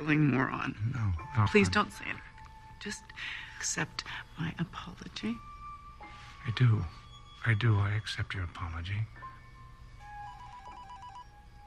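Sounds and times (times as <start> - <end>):
speech: 0.0 - 2.2, 2.8 - 5.5, 6.4 - 9.2
low hum: 0.0 - 11.6
telephone ringing with a warbling electronic ringtone: 10.0 - 11.6.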